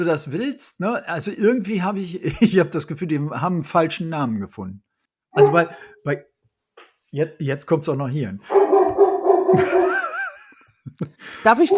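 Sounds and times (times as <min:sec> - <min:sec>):
speech: 0:00.0 - 0:06.3, 0:07.1 - 0:08.6, 0:09.5 - 0:09.9, 0:10.8 - 0:11.7
laughter: 0:02.0 - 0:03.2, 0:05.4 - 0:05.9, 0:09.5 - 0:11.7
dog barking and yipping: 0:05.4 - 0:05.9, 0:08.5 - 0:09.9
dog whining: 0:05.4 - 0:05.9.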